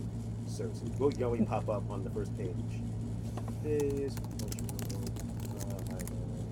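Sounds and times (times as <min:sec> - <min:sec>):
low steady hum: 0:00.0 - 0:06.4
speech: 0:00.6 - 0:03.0, 0:03.6 - 0:04.8
fingers typing a search on a computer keyboard: 0:03.8 - 0:06.1.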